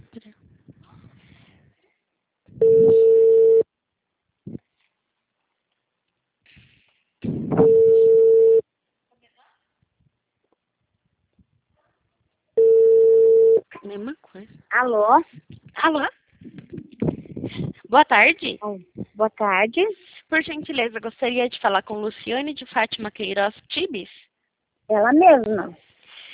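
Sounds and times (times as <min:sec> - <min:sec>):
small noises: 0:00.0 - 0:26.3
telephone ringback tone while placing a call: 0:02.6 - 0:03.6, 0:07.6 - 0:08.6, 0:12.6 - 0:13.6
speech: 0:14.8 - 0:16.2, 0:17.9 - 0:24.3, 0:24.9 - 0:25.9.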